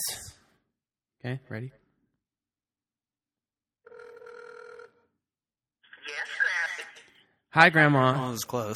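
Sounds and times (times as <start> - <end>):
speech: 0.0 - 0.3, 1.2 - 1.8, 7.6 - 8.7
phone ring tone on speakerphone: 3.8 - 5.1.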